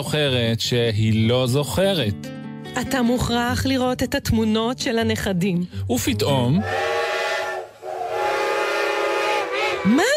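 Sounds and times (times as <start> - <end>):
speech: 0.0 - 7.0, 9.8 - 10.1
loud sustained train whistle blowing: 6.6 - 10.1.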